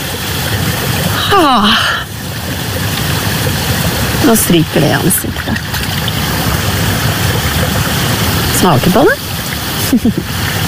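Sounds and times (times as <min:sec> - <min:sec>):
spring water trickling between stones and green moss: 0:00.0 - 0:10.6
speech: 0:01.3 - 0:02.0, 0:04.2 - 0:05.7, 0:08.6 - 0:09.2, 0:09.9 - 0:10.6.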